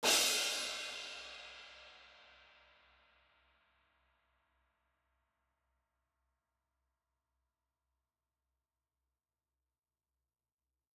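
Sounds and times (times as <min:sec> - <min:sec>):
high crash cymbal on drum kit: 0:00.0 - 0:02.1.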